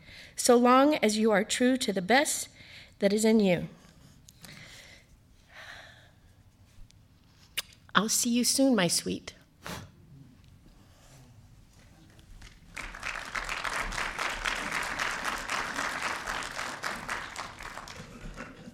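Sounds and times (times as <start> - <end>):
speech: 0.4 - 3.8, 8.0 - 9.9
audience applause: 12.4 - 18.7.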